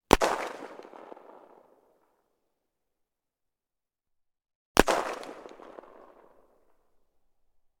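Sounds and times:
Arisaka gun: 0.0s - 2.0s, 4.8s - 7.1s.

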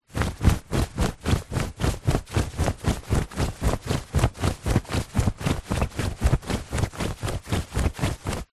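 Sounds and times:
shorts and clothes moving while running: 0.0s - 8.5s.

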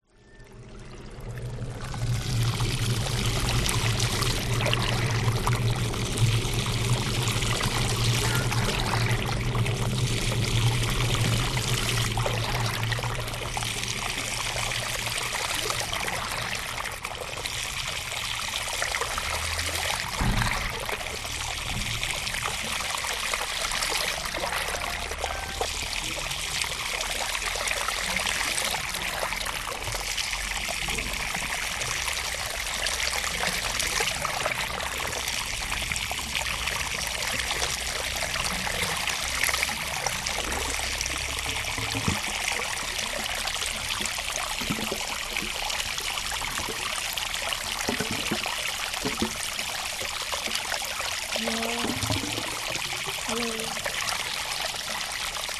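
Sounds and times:
water draining through industrial drainage system in rice fields in Indonesia: 0.2s - 55.5s.

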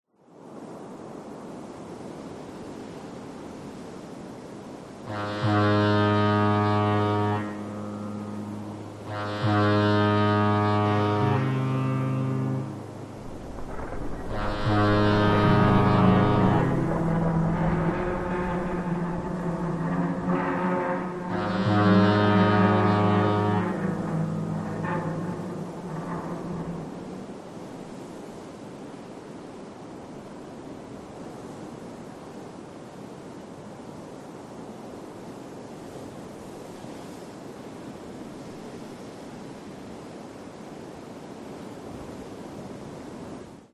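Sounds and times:
two ships colliding, crashing and scraping: 5.1s - 27.7s.

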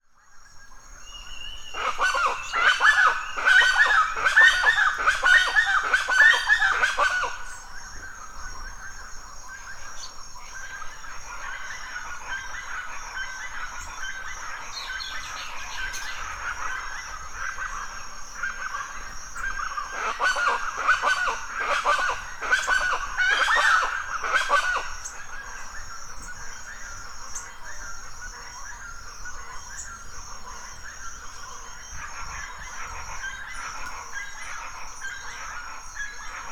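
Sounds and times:
chachalacas loud call at dawn in a forest in Mexico: 0.5s - 36.5s.

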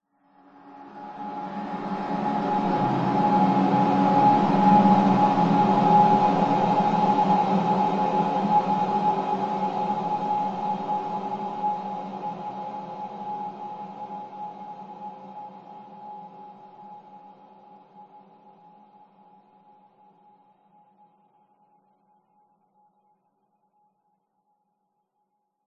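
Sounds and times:
dark discordant horror atmosphere swell: 0.8s - 14.0s.

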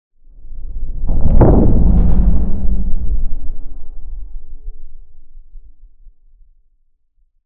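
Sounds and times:
underwater or space quake-like impact: 0.3s - 6.0s.

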